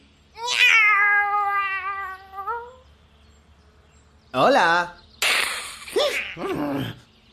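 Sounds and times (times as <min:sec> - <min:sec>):
female cat meowing beside a path: 0:00.4 - 0:02.8
speech: 0:04.4 - 0:05.0, 0:06.4 - 0:07.0.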